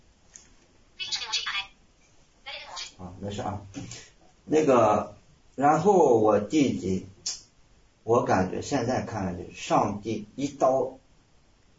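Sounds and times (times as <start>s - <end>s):
thin tinny automated voice prompt from a phone speaker: 1.0s - 1.7s, 2.5s - 3.1s
speech: 3.2s - 7.1s, 8.0s - 11.0s.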